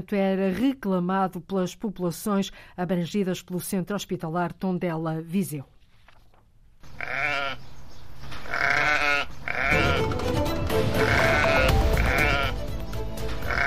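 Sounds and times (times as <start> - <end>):
speech: 0.0 - 5.7
several sheep bleating in a meadow: 6.9 - 7.6, 8.4 - 10.1, 11.0 - 12.6, 13.4 - 13.6.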